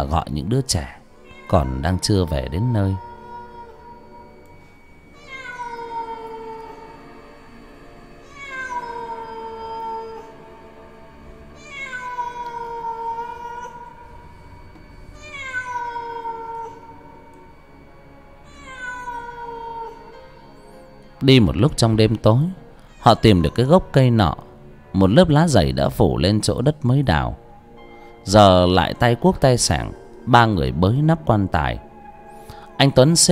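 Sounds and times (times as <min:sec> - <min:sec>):
speech: 0:00.0 - 0:03.1, 0:21.2 - 0:24.4, 0:25.0 - 0:27.4, 0:28.2 - 0:31.8, 0:32.8 - 0:33.3
low hum: 0:00.0 - 0:33.3
stray cats meowing on rooftops: 0:01.2 - 0:07.2, 0:08.2 - 0:10.5, 0:11.5 - 0:14.5, 0:15.1 - 0:17.3, 0:18.4 - 0:20.7, 0:22.2 - 0:24.5.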